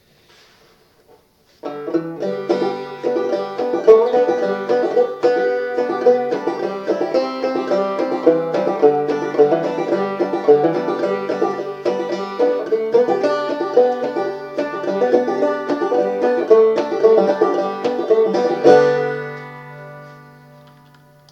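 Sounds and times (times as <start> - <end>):
circle banjo in open G tuning without capo: 1.6 - 21.3.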